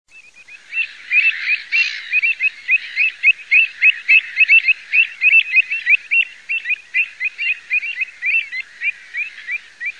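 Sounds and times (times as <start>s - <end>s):
avocet calling: 0.1s - 9.9s.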